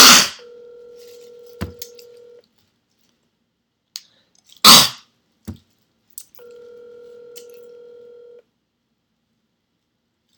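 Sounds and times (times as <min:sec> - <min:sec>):
telephone ringing over the line: 0:00.1 - 0:02.4, 0:06.4 - 0:08.5.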